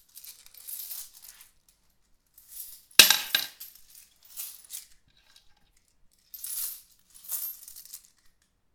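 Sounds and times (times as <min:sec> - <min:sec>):
coins being counted: 0:02.4 - 0:04.8, 0:06.3 - 0:08.2.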